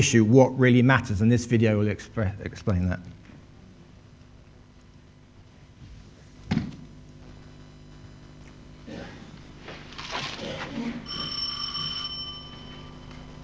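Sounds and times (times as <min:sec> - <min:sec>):
speech: 0:00.0 - 0:03.2
doorbell ringing with an electronic tone: 0:11.0 - 0:13.4.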